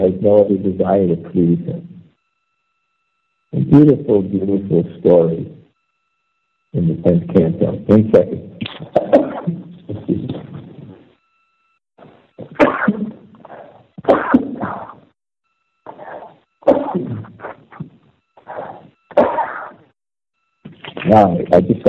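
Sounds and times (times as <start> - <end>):
speech: 0.1 - 1.9, 3.5 - 5.6, 6.7 - 10.5, 21.0 - 21.8
loud sneezing attack with repeated sneezes: 12.4 - 14.9, 15.9 - 17.2, 18.5 - 19.8.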